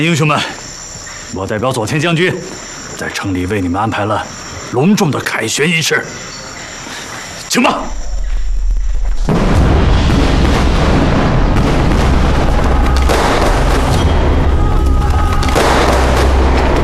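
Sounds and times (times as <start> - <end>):
speech: 0.0 - 0.6, 1.3 - 6.4, 7.5 - 8.0
heavy booms: 8.0 - 16.8
firecrackers exploding: 9.1 - 16.8.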